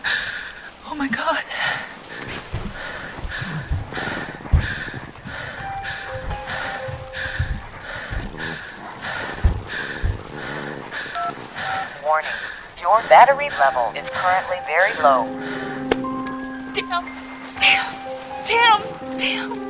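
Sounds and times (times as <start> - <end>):
movement noises: 1.8 - 19.6
tense voices: 2.8 - 15.9
electronic keypad beeps as a number is dialed: 11.2 - 11.4
speech: 13.1 - 15.8, 16.9 - 19.6.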